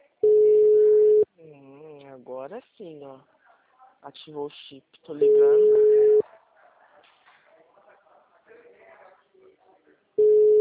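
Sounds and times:
telephone call tone while dialing from a chip SIM phone: 0.2s - 1.2s, 5.2s - 6.2s, 10.2s - 10.5s
speech: 2.5s - 3.4s, 4.0s - 6.0s.

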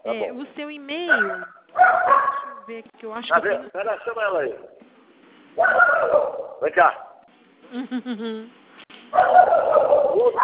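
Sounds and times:
speech: 0.0s - 4.8s, 5.6s - 7.1s, 7.7s - 10.4s
dog barking: 1.1s - 2.7s, 5.6s - 7.2s, 9.1s - 10.4s.

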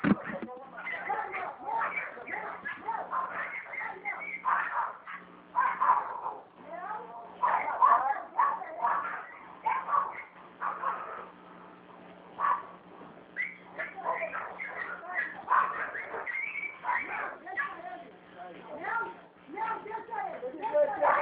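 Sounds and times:
dogs fighting with snarls, yelps and whining barks: 0.0s - 6.5s, 7.4s - 11.4s, 12.4s - 18.0s, 20.6s - 21.1s
faint steady hum: 0.0s - 21.1s.

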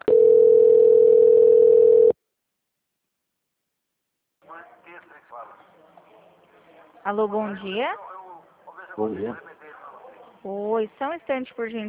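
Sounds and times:
steady single-pitched telephone call transfer tone: 0.0s - 2.2s
speech: 7.0s - 8.1s, 9.0s - 9.5s, 10.4s - 11.8s.

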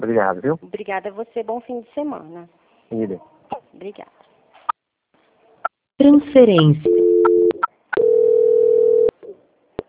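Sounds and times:
speech: 0.0s - 4.2s, 6.0s - 7.2s
telephone transfer beeps during a call transfer: 6.5s - 9.1s.

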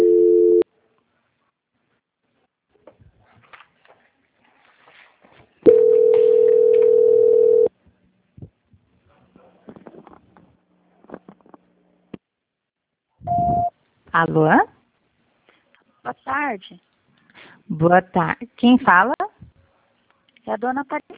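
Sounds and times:
telephone line tones during a call transfer: 0.0s - 0.6s, 5.7s - 7.7s
speech: 14.2s - 14.7s, 16.3s - 16.9s, 17.7s - 19.2s, 20.5s - 21.1s.

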